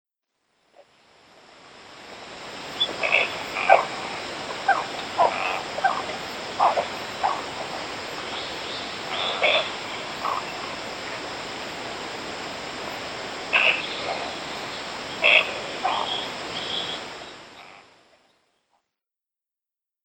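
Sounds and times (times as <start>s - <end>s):
cattle egret on Yonaguni Island in Okinawa: 2.8s - 10.8s, 13.5s - 18.2s.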